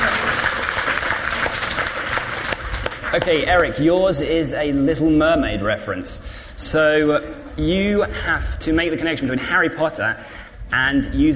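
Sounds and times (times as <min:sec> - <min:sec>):
crowd applause: 0:00.0 - 0:03.8
speech: 0:03.1 - 0:11.3.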